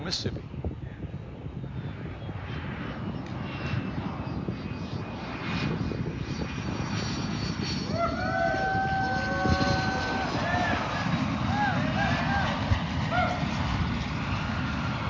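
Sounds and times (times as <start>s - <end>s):
airplane engine roaring as the aircraft comes in to land: 0.0s - 15.0s
speech: 0.1s - 0.6s
rising whining tones of landing aircraft: 5.2s - 15.0s.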